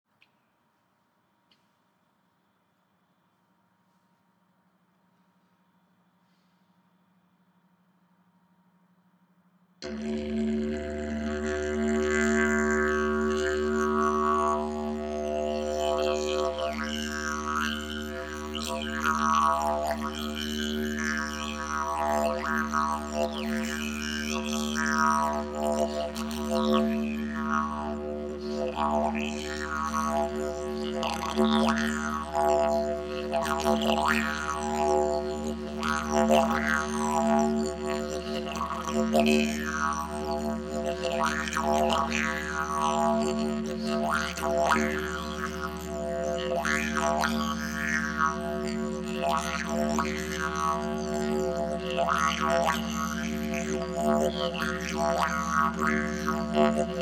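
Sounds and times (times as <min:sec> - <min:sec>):
alpha binaural beats: 0:09.8 - 0:51.8
didgeridoo: 0:09.8 - 0:57.0.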